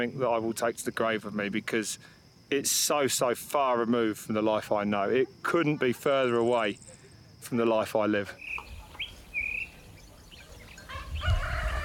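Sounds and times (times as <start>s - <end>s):
speech: 0.0s - 8.6s
brief high bird chirps: 8.4s - 11.4s
rooster crowing in a village: 10.8s - 11.8s.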